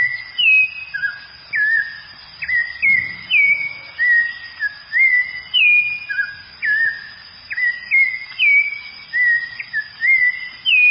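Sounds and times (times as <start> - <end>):
clear high whistle: 0.0 - 10.8.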